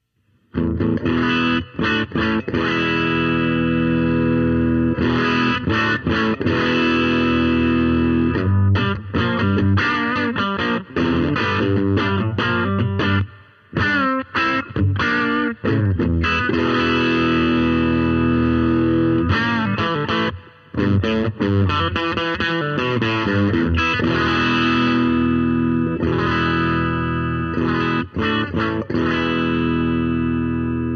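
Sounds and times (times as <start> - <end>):
heavily overdriven electric guitar on bridge humbucker playing chords and riffs: 0.5 - 30.9.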